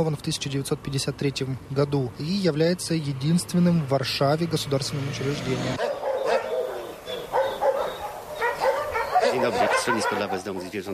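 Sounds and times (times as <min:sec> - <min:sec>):
speech: 0:00.0 - 0:06.0, 0:09.4 - 0:10.9
many dogs barking and yipping at an animal shelter: 0:05.8 - 0:10.9.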